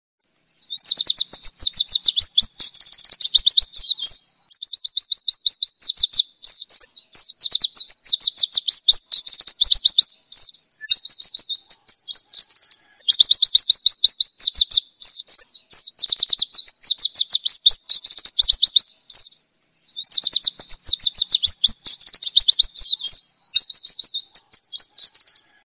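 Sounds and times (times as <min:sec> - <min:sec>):
pleci bird singing: 0:00.2 - 0:25.6.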